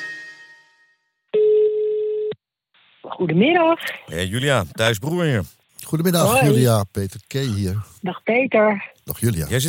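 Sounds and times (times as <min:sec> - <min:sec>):
telephone ringing out on an outgoing call: 0:01.3 - 0:02.3
speech: 0:03.2 - 0:09.6.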